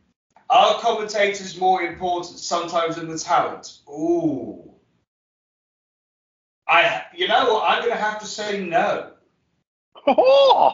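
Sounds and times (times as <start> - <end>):
speech: 0.6 - 4.7, 6.7 - 9.1, 10.0 - 10.7
person's vocal squawk imitating a seagull call: 10.0 - 10.7.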